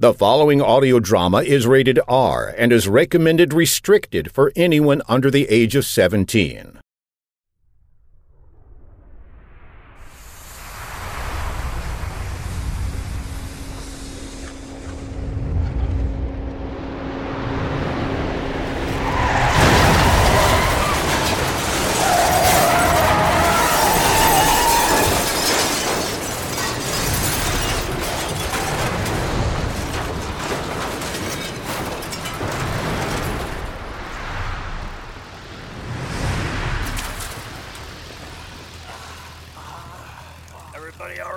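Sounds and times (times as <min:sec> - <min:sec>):
speech: 0:00.0 - 0:06.8
sustained heavy avalanche rumble: 0:07.6 - 0:41.3
avalanche crashing into a bus: 0:07.7 - 0:41.2
bus engine noise: 0:10.1 - 0:41.3
shattering scraping debris: 0:18.8 - 0:35.9, 0:36.5 - 0:41.2.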